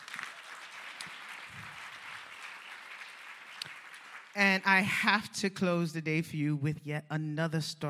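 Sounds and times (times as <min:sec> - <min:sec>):
conference audience applauding: 0:00.0 - 0:04.4
sharp individual claps: 0:00.0 - 0:04.4
speech: 0:04.4 - 0:07.8.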